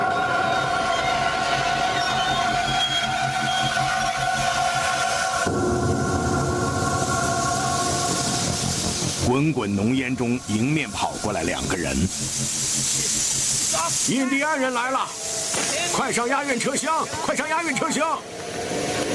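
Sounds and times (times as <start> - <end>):
train rolling along railway tracks: 0.0 - 14.0, 18.2 - 19.1
speech: 9.4 - 12.6, 13.8 - 15.2, 15.8 - 18.8.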